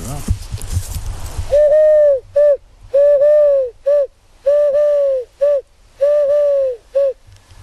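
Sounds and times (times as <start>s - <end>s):
person imitating Eurasian collared dove coos: 1.5s - 7.2s.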